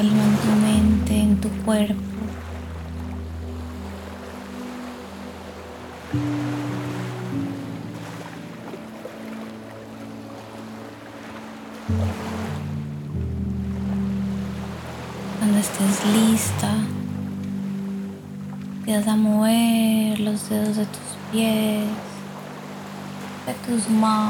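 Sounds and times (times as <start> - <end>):
speech: 0.0 - 0.7, 1.4 - 2.5, 19.0 - 22.0, 23.7 - 24.2
low sustained droning tones: 0.0 - 10.2, 11.9 - 20.3
ocean waves washing onto a beach in a light breeze: 0.0 - 24.2.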